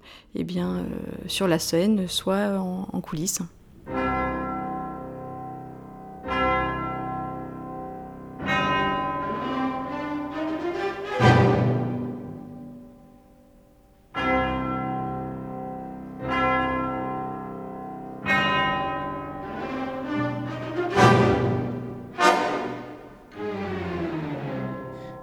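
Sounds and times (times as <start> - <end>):
speech: 0.3 - 3.6
deep orchestral bells tolling in a symphony: 3.9 - 13.1, 14.2 - 25.2
sustained orchestral tones: 8.4 - 13.1, 18.3 - 25.2.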